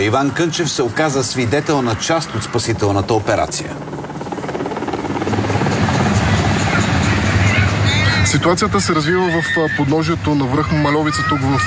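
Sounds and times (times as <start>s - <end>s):
speech: 0.0s - 4.0s, 8.3s - 11.6s
helicopter engine whine: 0.0s - 8.8s
military helicopter rotor thudding: 2.0s - 7.9s.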